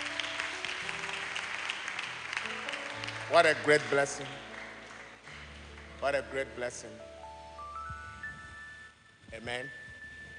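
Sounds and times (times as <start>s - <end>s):
church congregation clapping hands in praise: 0.0s - 6.9s
speech: 3.3s - 4.5s, 6.0s - 7.1s, 9.3s - 9.8s.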